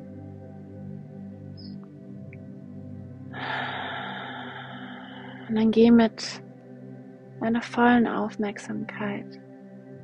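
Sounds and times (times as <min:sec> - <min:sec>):
soft sustained tones during a guided meditation: 0:00.0 - 0:10.0
person taking a long airy deep breath: 0:03.4 - 0:05.5
speech: 0:05.5 - 0:06.4, 0:07.4 - 0:09.4.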